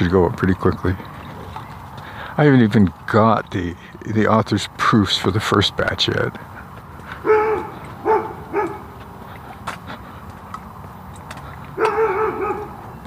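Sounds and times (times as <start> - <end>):
speech: 0.0 - 1.1, 2.4 - 6.5
steady outdoor noise: 0.0 - 13.0
big dog barking: 7.1 - 9.1, 11.7 - 12.9.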